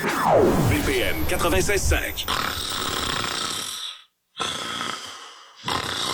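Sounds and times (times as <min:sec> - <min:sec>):
speech: 0:00.2 - 0:02.9
sleeping person snoring loudly and raspily: 0:02.2 - 0:06.1.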